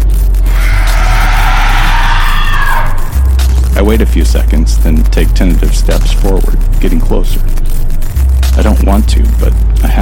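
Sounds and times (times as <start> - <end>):
harsh strangled creature screech: 0.4 - 3.2
speech: 3.9 - 7.8, 8.6 - 10.0.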